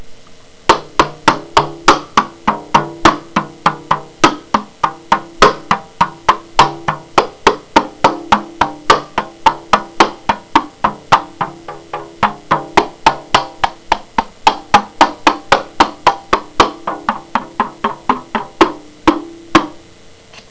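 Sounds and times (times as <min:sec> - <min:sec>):
terracotta drum: 0:00.0 - 0:20.0.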